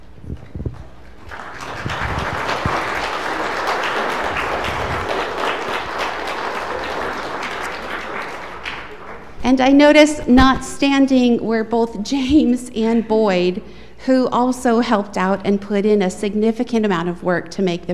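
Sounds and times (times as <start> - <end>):
large group applauding: 0.6 - 9.4
speech: 9.5 - 17.9.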